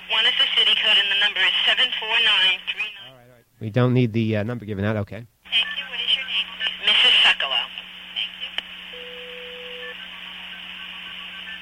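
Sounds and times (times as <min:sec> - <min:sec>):
low constant hum: 0:00.0 - 0:11.6
speech: 0:00.8 - 0:03.0, 0:03.6 - 0:05.4
telephone multi-frequency signaling tones over a phone line: 0:08.9 - 0:10.0.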